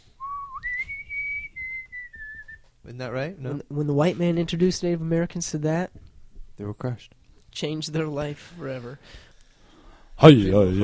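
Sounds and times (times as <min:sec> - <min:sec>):
penny whistle playing: 0:00.2 - 0:02.6
speech: 0:02.9 - 0:06.0, 0:06.6 - 0:09.3, 0:10.2 - 0:10.8.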